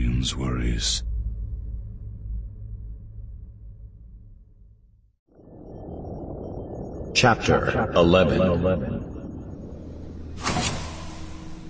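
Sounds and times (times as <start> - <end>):
speech: 0.2 - 1.1, 7.2 - 9.0
sliding door to a ship's bridge whooshing open: 10.3 - 11.6.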